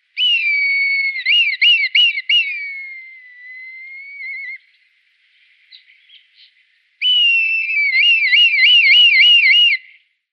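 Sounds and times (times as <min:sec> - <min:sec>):
red kite Milvus milvus calling: 0:00.0 - 0:04.6, 0:07.0 - 0:09.8.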